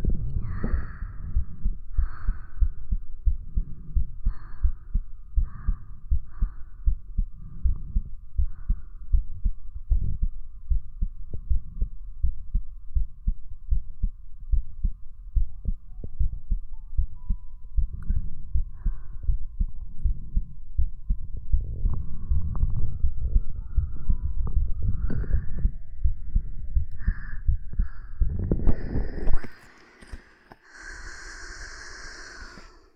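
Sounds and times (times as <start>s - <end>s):
rapid regular heartbeat thumping: 0.0s - 29.5s
faint hum: 0.0s - 32.9s.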